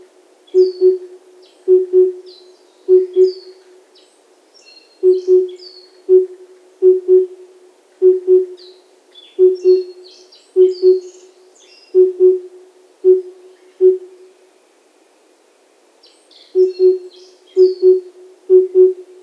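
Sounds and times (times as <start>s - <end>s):
small birds twittering and chirping: 0.5s - 6.3s, 8.6s - 12.4s, 16.0s - 18.9s
cuckoo hooting in the wild in Hokkaido: 0.6s - 2.3s, 2.9s - 3.6s, 5.0s - 7.4s, 8.0s - 8.7s, 9.4s - 10.0s, 10.6s - 11.2s, 12.0s - 14.2s, 16.6s - 19.2s.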